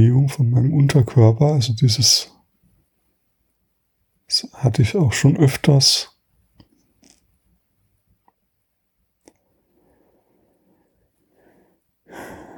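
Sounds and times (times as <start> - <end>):
speech: 0.0 - 2.3, 4.3 - 6.1
breathing: 9.6 - 12.5.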